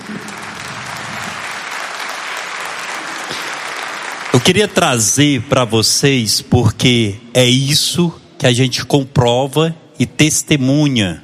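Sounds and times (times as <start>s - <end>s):
crowd applauding steadily: 0.0s - 5.2s
speech: 4.4s - 11.2s.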